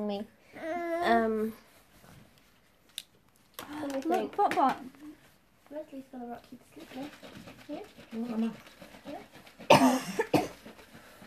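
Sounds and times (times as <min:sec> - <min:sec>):
speech: 0:00.0 - 0:01.6, 0:03.8 - 0:05.0, 0:05.7 - 0:10.5
person coughing: 0:09.7 - 0:10.6.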